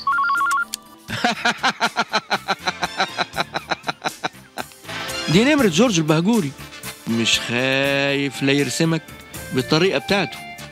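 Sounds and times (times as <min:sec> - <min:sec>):
landline telephone ringing with electronic trill: 0:00.0 - 0:00.7
speech: 0:01.1 - 0:02.1, 0:05.3 - 0:10.5
laughter: 0:01.1 - 0:04.7.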